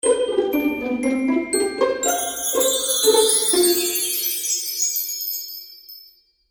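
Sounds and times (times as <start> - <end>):
magical cartoon music finale: 0.0 - 4.8.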